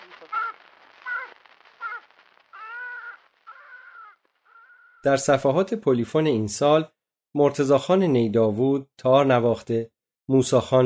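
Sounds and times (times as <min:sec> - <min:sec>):
crow cawing: 0:00.2 - 0:05.0
speech: 0:05.0 - 0:10.8.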